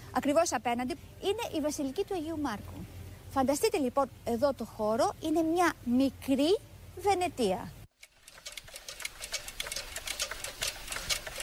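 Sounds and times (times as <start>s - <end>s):
speech: 0.1s - 7.8s
mechanical clock ticking: 8.0s - 11.4s.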